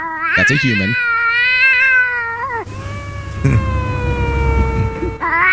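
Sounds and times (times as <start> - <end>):
man imitating cat meows and yowls to a cat: 0.0 - 1.0, 2.7 - 5.4
speech: 0.0 - 1.6.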